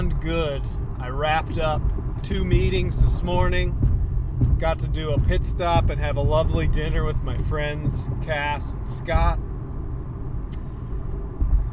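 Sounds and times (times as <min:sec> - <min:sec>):
car engine rumble cruising on a highway in Michigan: 0:00.0 - 0:11.7
road noise on a highway: 0:00.0 - 0:11.7
speech: 0:00.2 - 0:09.5
heavy thump: 0:01.5 - 0:08.3, 0:11.4 - 0:11.7.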